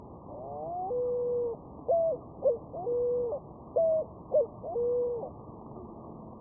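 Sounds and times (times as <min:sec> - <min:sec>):
Columba picazuro pigeon cooing: 0:00.4 - 0:05.3.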